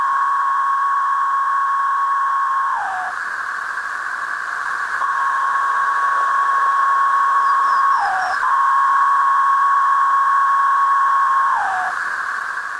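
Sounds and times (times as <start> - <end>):
male periodical cicadas droning in calling and courting songs: 0.6 - 12.7.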